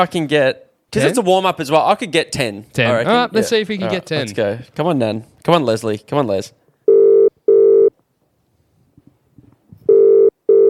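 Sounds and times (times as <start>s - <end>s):
speech: 0.0s - 6.6s
phone ringback tone: 6.9s - 7.9s, 9.9s - 10.6s.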